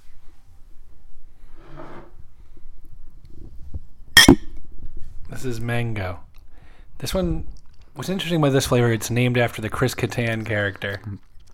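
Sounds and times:
glasses clinking in a toast: 4.2 - 4.4
speech: 5.4 - 6.3, 7.0 - 11.3.

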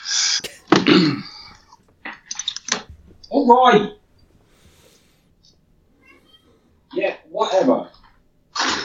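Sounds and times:
speech: 0.9 - 1.3, 3.3 - 4.0
cat meowing: 5.9 - 6.6.

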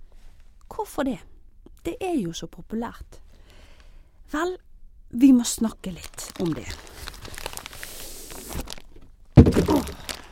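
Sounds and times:
speech: 0.8 - 3.2, 4.3 - 7.1
cardboard bag-in-box wine being handled, rustling and scraping: 6.3 - 10.3
loud crunch of cardboard wine box being moved: 9.4 - 10.3.

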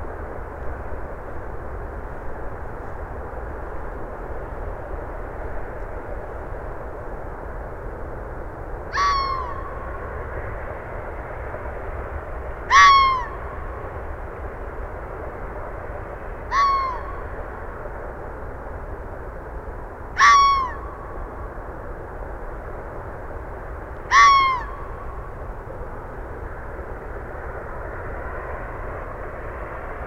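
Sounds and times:
steady low roar of road traffic: 0.0 - 30.0
red fox giving sharp barking calls: 20.2 - 20.8.

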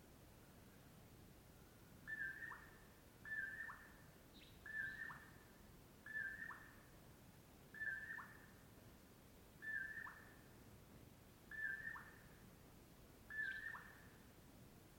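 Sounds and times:
quiet hissing background: 0.0 - 14.9
Common Poorwill song at dawn off Brewton Road near Colockum Pass: 2.1 - 5.3, 6.1 - 6.7, 7.8 - 8.4, 9.6 - 10.3, 11.5 - 12.2, 13.3 - 14.0.

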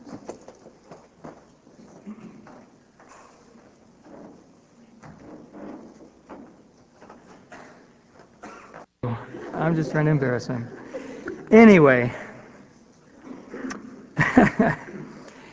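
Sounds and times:
sinking office chair clunking and knocking as it is adjusted: 0.0 - 9.0
laughter: 9.0 - 12.2, 13.7 - 15.4
speech: 9.6 - 10.8, 11.5 - 12.2.

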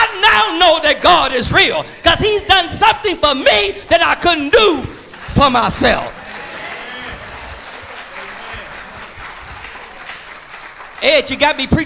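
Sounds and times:
speech: 0.9 - 6.2, 11.0 - 11.8
crowd clapping: 5.0 - 11.8.

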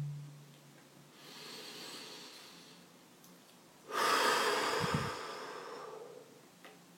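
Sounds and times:
deep breathing by one person: 1.1 - 2.9, 3.9 - 6.4.

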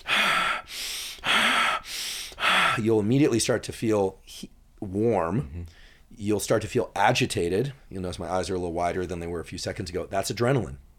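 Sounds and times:
deep breathing in and out as a breathing exercise: 0.0 - 2.8, 5.6 - 6.1
speech: 2.8 - 10.9.

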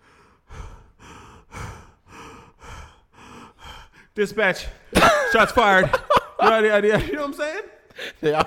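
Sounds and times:
person imitating heavy out-of-breath panting: 0.0 - 4.9
speech: 4.2 - 8.4.

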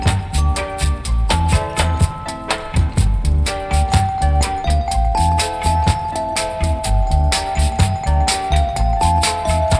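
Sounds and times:
bright bell-like glockenspiel melody: 0.0 - 9.7
loud thumping dance beat: 0.0 - 9.7.

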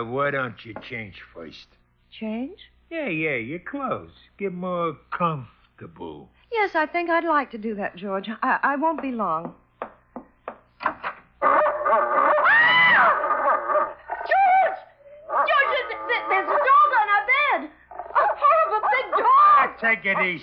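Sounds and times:
speech: 0.0 - 9.6, 19.8 - 20.4
dog barking in sharp yips: 11.4 - 20.4.

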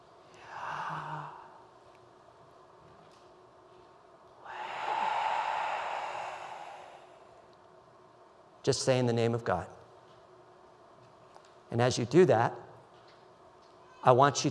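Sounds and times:
slow breathing during a prayer breath practice: 0.3 - 1.7, 4.4 - 7.6
speech: 8.7 - 9.8, 11.7 - 12.7, 14.0 - 14.4.

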